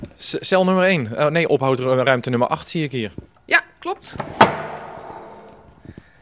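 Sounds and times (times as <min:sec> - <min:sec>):
speech: 0:00.2 - 0:04.7
heavy metal holding cell door clanking open: 0:04.1 - 0:05.9
soft knocks: 0:04.1 - 0:06.0.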